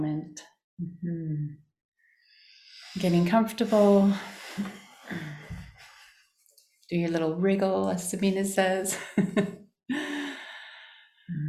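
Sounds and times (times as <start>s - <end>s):
speech: 0.0s - 1.6s, 2.9s - 5.4s, 6.9s - 10.2s
deep breath and sigh: 3.7s - 6.2s, 9.9s - 11.3s.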